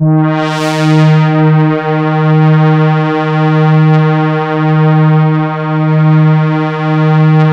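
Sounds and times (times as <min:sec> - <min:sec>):
mono synth pad: 0:00.0 - 0:07.5.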